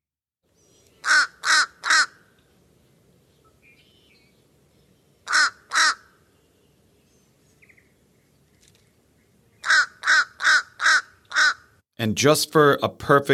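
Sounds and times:
fish crow nasal caw calls: 1.0 - 2.3, 5.2 - 6.2, 9.6 - 11.8
speech: 12.0 - 13.3.

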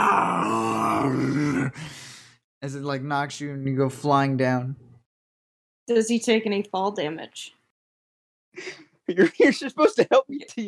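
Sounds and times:
video game creature roaring: 0.0 - 1.8
speech: 2.6 - 4.9, 5.9 - 7.6, 8.6 - 10.6.

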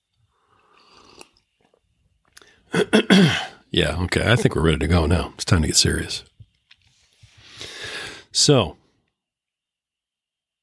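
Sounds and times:
slurping sip from a drink: 0.4 - 1.8
speech: 2.7 - 6.3, 8.4 - 8.8.

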